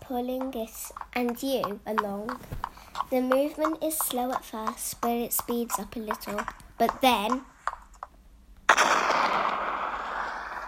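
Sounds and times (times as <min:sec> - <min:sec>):
speech: 0:00.1 - 0:07.5
explosion: 0:08.7 - 0:10.6.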